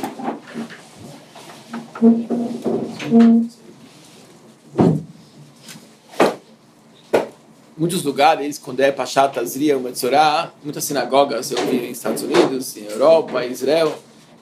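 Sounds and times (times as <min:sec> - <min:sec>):
room murmur: 0:00.0 - 0:14.3
door creaking shut: 0:02.0 - 0:03.5
speech: 0:02.0 - 0:03.6, 0:07.8 - 0:14.0.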